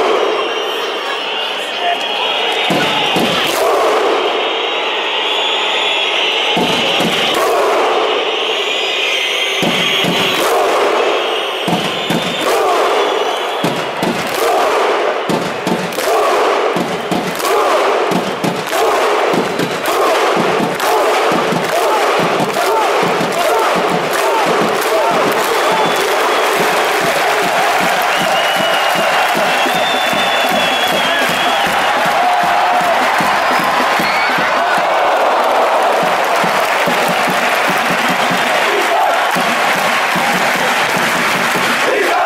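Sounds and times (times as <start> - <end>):
huge football stadium crowd roaring a rhythmic support chant: 0.0 - 42.2
football crowd clapping in unison: 2.7 - 3.8, 11.6 - 42.2.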